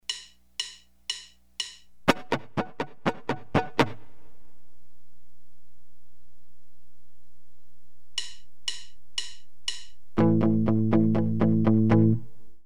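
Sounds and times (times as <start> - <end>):
guitar with left and right hand muting: 0.1 - 4.3, 8.2 - 12.6.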